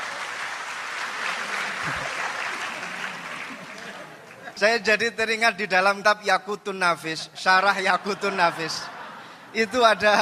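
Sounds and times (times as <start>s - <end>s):
audience applause at an Islamic religious gathering: 0.0s - 4.5s
laughter: 1.2s - 4.8s, 7.6s - 10.2s
speech: 4.6s - 8.9s, 9.5s - 10.2s.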